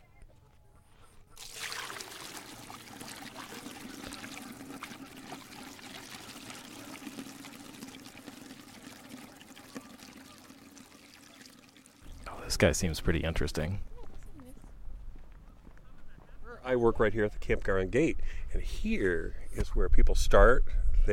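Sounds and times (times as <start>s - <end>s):
water pouring from a bucket: 1.4s - 12.4s
speech: 12.5s - 13.9s, 16.8s - 21.1s.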